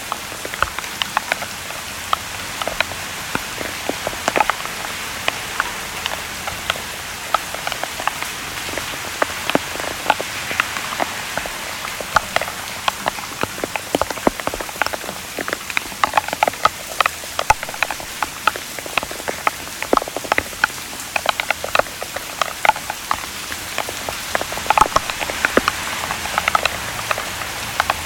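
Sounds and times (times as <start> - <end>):
raindrops pattering on a surface: 0.0 - 28.0.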